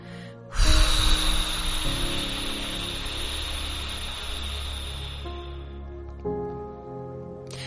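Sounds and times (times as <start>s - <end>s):
forceful exhale after holding the breath during a breathing exercise: 0.0s - 5.6s.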